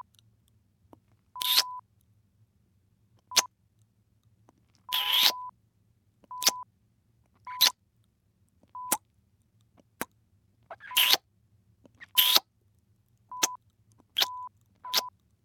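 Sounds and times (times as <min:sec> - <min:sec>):
kissing sounds: 0:01.4 - 0:01.7, 0:04.9 - 0:05.4, 0:06.4 - 0:06.6, 0:10.7 - 0:11.2, 0:12.0 - 0:12.5, 0:14.2 - 0:15.1.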